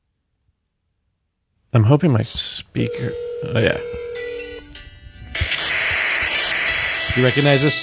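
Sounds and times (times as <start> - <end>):
speech: 1.7 - 4.0, 7.1 - 7.8
short electronic phone dialing tones: 2.9 - 4.7, 5.4 - 7.8
loud hissing static: 5.4 - 7.8.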